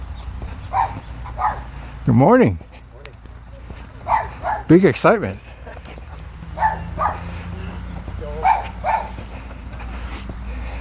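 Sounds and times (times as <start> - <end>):
steady outdoor noise: 0.0 - 10.7
small chihuahua yipping barks: 0.7 - 1.7, 3.0 - 4.7, 6.5 - 7.3, 8.4 - 9.2
speech: 2.1 - 2.7, 4.7 - 5.4.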